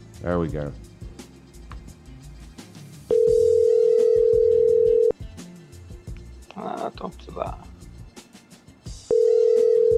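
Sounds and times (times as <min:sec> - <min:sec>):
speech: 0:00.2 - 0:00.9
telephone ringing tone while calling: 0:03.1 - 0:05.2, 0:09.1 - 0:09.9.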